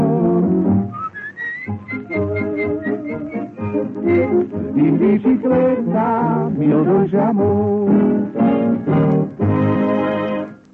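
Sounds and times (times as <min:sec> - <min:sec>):
steady musical accompaniment: 0:00.0 - 0:10.7
person whistling a bright melody: 0:00.9 - 0:04.6
speech: 0:04.2 - 0:09.3.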